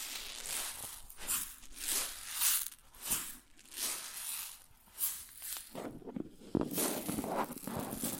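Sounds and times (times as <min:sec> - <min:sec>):
grain rustling and pouring: 0:00.1 - 0:08.1.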